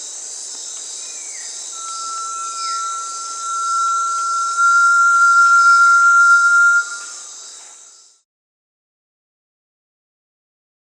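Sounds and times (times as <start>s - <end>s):
faint high hiss: 0.0s - 8.2s
Crypturellus strigulosus Brazilian tinamou whistled note in Peru: 1.8s - 7.3s.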